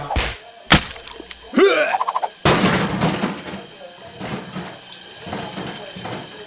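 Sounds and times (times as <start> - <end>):
shower water splashing and spraying: 0.0 - 6.4
person making brief high vocal sounds: 1.4 - 2.4.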